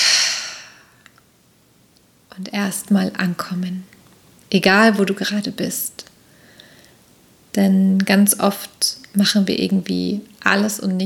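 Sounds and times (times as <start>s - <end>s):
deep slow exhale through the mouth during a guided relaxation breath: 0.0s - 1.0s
speech: 2.4s - 6.1s, 7.6s - 11.0s.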